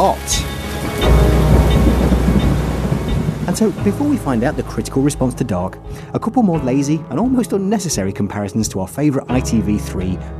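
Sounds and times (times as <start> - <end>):
speech: 0.0 - 0.6, 3.5 - 10.3
deep rumble of thunder: 0.0 - 6.1
heavy rain pouring in a dense steady roar: 0.0 - 6.3.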